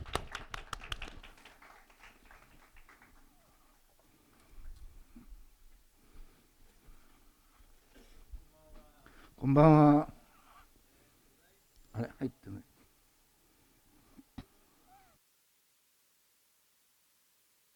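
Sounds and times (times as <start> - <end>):
audience applause welcoming a speaker: 0.0 - 4.0
speech: 9.4 - 10.1.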